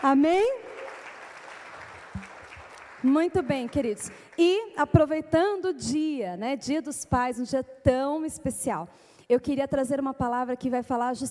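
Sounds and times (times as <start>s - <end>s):
speech: 0.0s - 0.6s, 3.0s - 11.2s
church audience applauding: 0.0s - 4.4s.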